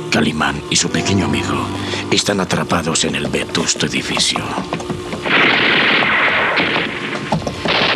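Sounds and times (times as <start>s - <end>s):
speech: 0.2s - 4.9s
sustained gunfire in dark corridors of an old building: 5.2s - 7.9s.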